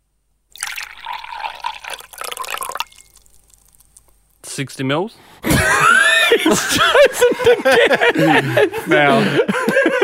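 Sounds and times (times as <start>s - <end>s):
liquid poured into a glass next to a microphone: 0.5s - 4.1s
speech: 4.6s - 10.0s
laughter: 5.4s - 10.0s.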